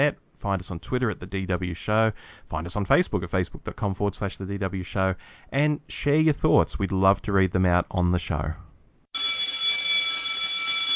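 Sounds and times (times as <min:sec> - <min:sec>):
speech: 0:00.0 - 0:08.6
loud electric bell ringing: 0:09.2 - 0:10.9.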